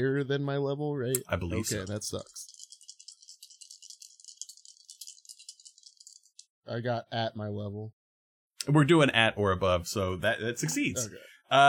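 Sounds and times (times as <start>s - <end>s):
speech: 0.0s - 2.6s, 6.7s - 8.0s, 8.6s - 11.6s
dice rattling as they are shaken and tossed: 1.6s - 6.5s.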